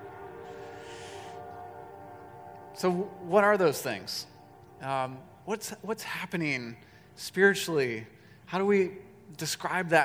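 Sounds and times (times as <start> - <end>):
train going by: 0.0 - 6.8
sustained tonal lines: 0.0 - 7.0
speech: 2.8 - 10.0.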